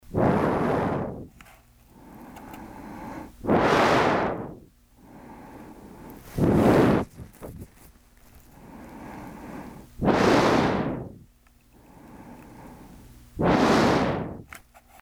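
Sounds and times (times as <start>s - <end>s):
blowing into a field recorder: 0.0s - 1.3s, 2.5s - 5.4s, 6.0s - 7.9s, 8.6s - 11.3s, 12.2s - 14.5s.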